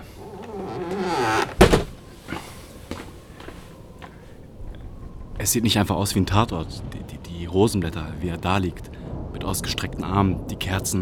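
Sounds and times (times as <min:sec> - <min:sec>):
door banging shut with a solid thud: 0:00.0 - 0:02.1
door swinging with a drawn-out creak: 0:00.0 - 0:02.5
soft footsteps: 0:00.0 - 0:04.3
speech: 0:05.4 - 0:11.0.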